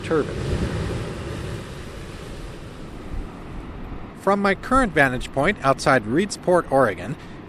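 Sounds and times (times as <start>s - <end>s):
wind noise: 0.0s - 5.3s
ocean waves crashing over a jetty: 0.0s - 5.9s
speech: 0.1s - 0.6s, 4.2s - 7.3s.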